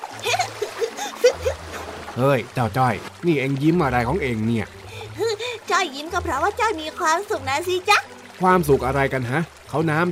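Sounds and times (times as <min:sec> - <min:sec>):
boat paddle splashing through floodwater: 0:00.0 - 0:04.0
speech: 0:02.2 - 0:04.8, 0:05.8 - 0:10.1.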